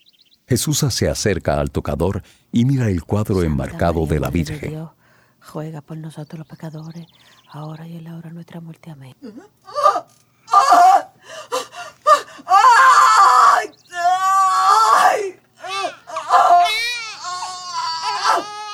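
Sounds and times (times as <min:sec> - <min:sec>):
speech: 0:00.5 - 0:09.8
newborn baby crying in wailing bursts with gasping breaths: 0:09.2 - 0:18.7.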